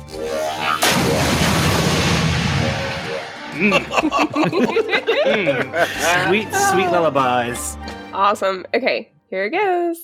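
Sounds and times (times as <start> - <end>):
sci-fi plasma cannon blast with roaring rumble: 0.7 - 3.6
people laughing: 3.5 - 7.0
speech: 3.6 - 10.0.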